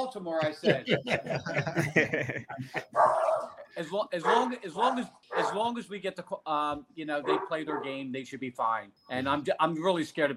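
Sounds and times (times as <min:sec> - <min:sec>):
speech: 0:00.1 - 0:10.3
laughter: 0:00.4 - 0:05.0
dogs barking: 0:02.8 - 0:05.7, 0:07.2 - 0:08.0.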